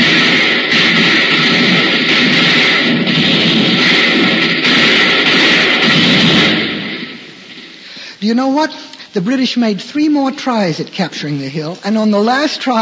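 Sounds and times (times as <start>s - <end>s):
colonial soldiers firing a gunfire volley: 0.0s - 8.6s
speech: 8.4s - 12.8s.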